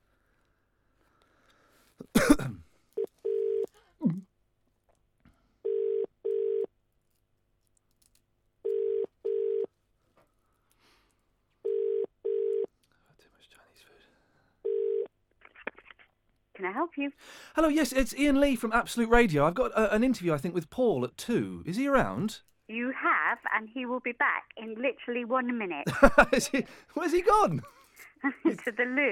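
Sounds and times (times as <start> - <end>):
cough-like burst: 2.0 - 2.7
telephone ringback tone on an outgoing call: 3.0 - 3.7, 5.6 - 6.7, 8.7 - 9.7, 11.7 - 12.7, 14.6 - 15.1
speech: 16.6 - 29.1
laughter: 25.9 - 29.1.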